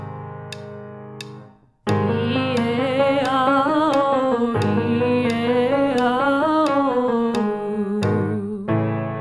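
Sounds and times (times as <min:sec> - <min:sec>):
low major and minor triplet vocal warmups: 0:01.9 - 0:09.0.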